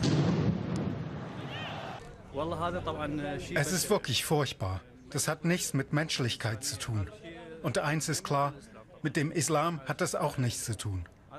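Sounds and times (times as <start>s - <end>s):
loud deep explosion bang at a football stadium: 0.0s - 1.3s
stadium crowd noise at a France versus Germany football match: 0.8s - 3.0s
speech: 2.4s - 11.3s.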